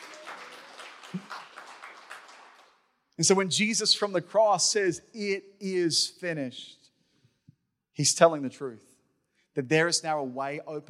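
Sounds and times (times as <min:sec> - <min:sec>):
audience clapping: 0:00.0 - 0:02.9
speech: 0:03.2 - 0:06.8, 0:08.0 - 0:08.9, 0:09.6 - 0:10.8.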